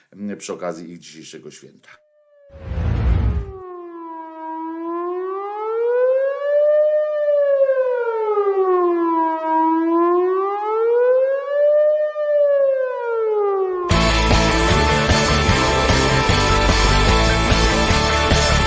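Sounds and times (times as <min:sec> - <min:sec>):
speech: 0:00.1 - 0:02.6
loud wailing siren rising and falling in slow sweeps: 0:02.2 - 0:18.6
short burst of noise: 0:02.6 - 0:03.6.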